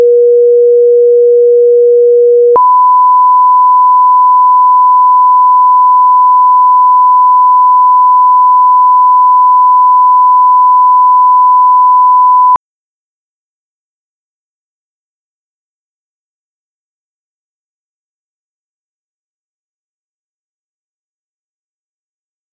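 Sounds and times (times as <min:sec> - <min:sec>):
tones: 0:00.1 - 0:12.6.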